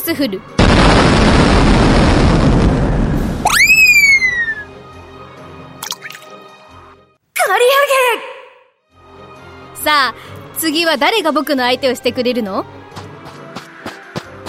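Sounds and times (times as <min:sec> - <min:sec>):
speech: 0:00.1 - 0:02.3, 0:09.8 - 0:12.8
roaring explosion: 0:00.6 - 0:04.6.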